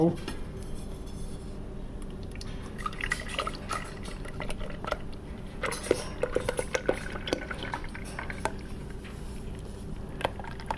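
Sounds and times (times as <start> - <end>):
speech: 0.0 - 0.4
low continuous hum: 0.0 - 10.7
dripping: 2.2 - 9.0
liquid pouring slowly into a bucket: 2.4 - 9.0, 10.2 - 10.7.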